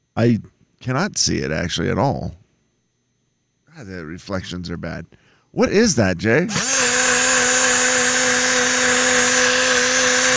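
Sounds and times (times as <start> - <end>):
speech: 0.2 - 2.4, 3.8 - 6.8
mini blender running with protein shake: 6.5 - 10.3.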